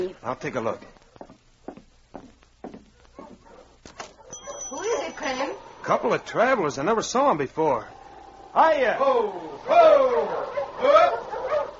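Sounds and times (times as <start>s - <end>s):
speech: 0.0s - 0.9s, 5.2s - 11.2s
sled dog team barking: 2.9s - 4.7s, 9.8s - 11.7s.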